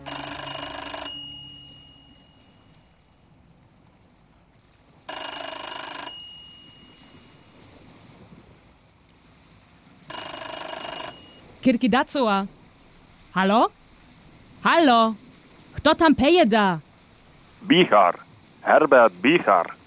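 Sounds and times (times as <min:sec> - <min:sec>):
old-style telephone bell ringing: 0:00.0 - 0:03.0, 0:05.1 - 0:07.5, 0:10.1 - 0:11.4
speech: 0:11.6 - 0:12.6, 0:13.4 - 0:13.8, 0:14.6 - 0:15.2, 0:15.8 - 0:16.8, 0:17.6 - 0:19.8.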